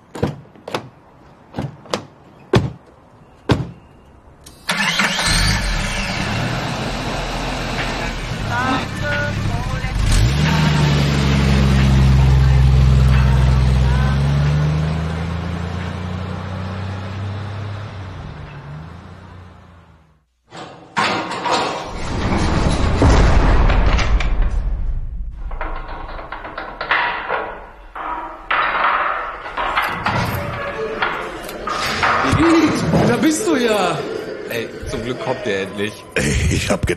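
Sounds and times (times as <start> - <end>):
car engine starting and driving off: 4.5 - 20.2
clicks and knocks: 20.5 - 32.6
laughter: 30.7 - 36.9.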